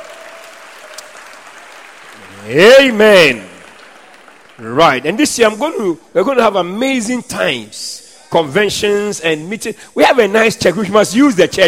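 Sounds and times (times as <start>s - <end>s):
audience clapping hands in church: 0.0s - 5.9s
speech: 2.4s - 3.5s, 4.6s - 11.6s.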